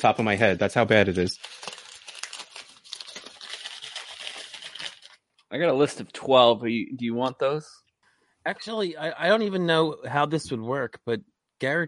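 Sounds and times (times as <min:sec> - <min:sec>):
speech: 0:00.0 - 0:01.7, 0:05.5 - 0:07.8, 0:08.4 - 0:11.8
sheet of paper being crumpled: 0:01.1 - 0:05.2.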